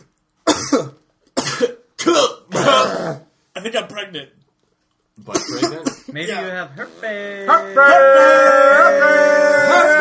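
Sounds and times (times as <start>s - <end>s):
person coughing with throat clearing: 0.4s - 3.2s, 5.3s - 6.4s
speech: 0.7s - 1.0s, 3.7s - 4.4s, 5.2s - 10.0s.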